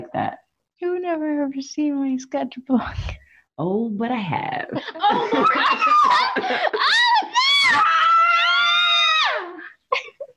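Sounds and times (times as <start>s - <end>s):
speech: 0.0s - 7.9s
laughter: 4.8s - 7.4s
person screaming mimicking agony: 5.7s - 9.6s.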